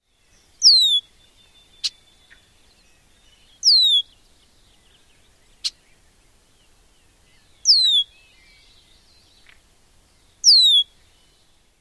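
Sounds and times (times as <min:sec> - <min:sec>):
male bird alarm whistles: 0:00.6 - 0:01.0, 0:03.6 - 0:04.1, 0:07.7 - 0:08.1, 0:10.5 - 0:10.9.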